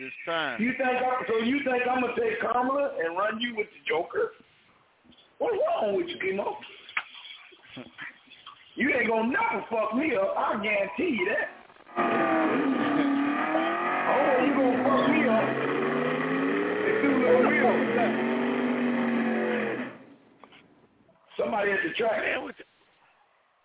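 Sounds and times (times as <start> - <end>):
speech: 0.0 - 4.5, 5.4 - 6.8, 7.8 - 8.1, 8.8 - 13.2, 21.4 - 22.7
racing video game tires squealing: 11.9 - 20.1
racing video game cars crashing: 11.9 - 20.2
racing video game engines revving and roaring: 11.9 - 20.2.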